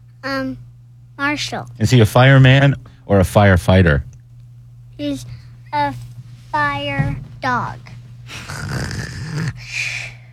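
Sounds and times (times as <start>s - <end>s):
speech: 0.2s - 4.1s, 5.0s - 6.0s, 6.6s - 9.9s
young boy pretending to snore: 8.3s - 10.2s.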